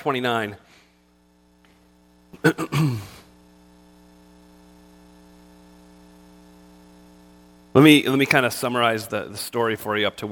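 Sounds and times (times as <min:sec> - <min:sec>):
speech: 0:00.0 - 0:00.8, 0:02.4 - 0:03.2, 0:07.8 - 0:10.2
harsh cough bursts after choking: 0:02.3 - 0:03.3
rough throat clearing after choking: 0:02.3 - 0:03.3.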